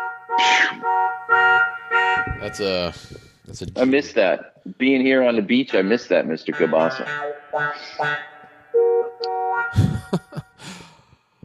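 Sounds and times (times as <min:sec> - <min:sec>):
car horn beeps: 0:00.0 - 0:02.8
speech: 0:00.4 - 0:00.9, 0:02.3 - 0:08.3
laughter: 0:09.8 - 0:10.8.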